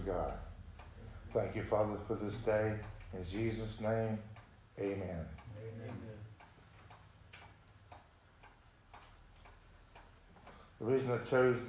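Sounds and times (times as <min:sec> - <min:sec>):
clock ticking: 0:00.0 - 0:11.6
faint low hum: 0:00.0 - 0:11.6
speech: 0:00.1 - 0:00.5, 0:01.3 - 0:06.3, 0:10.8 - 0:11.6.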